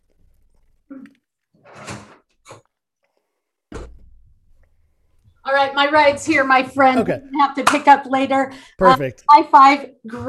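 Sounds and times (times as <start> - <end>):
door opening and closing: 1.6 - 2.7
speech: 5.5 - 10.2.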